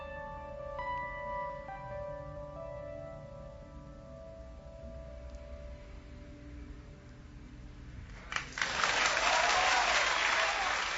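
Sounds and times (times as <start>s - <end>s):
crowd applauding together: 8.2s - 10.9s.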